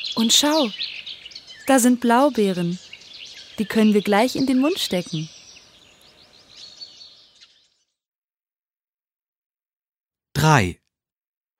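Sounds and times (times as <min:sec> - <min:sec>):
speech: 0:00.0 - 0:00.9, 0:01.6 - 0:02.8, 0:03.6 - 0:05.4, 0:10.5 - 0:10.8
birds chirping and twittering: 0:00.0 - 0:08.1.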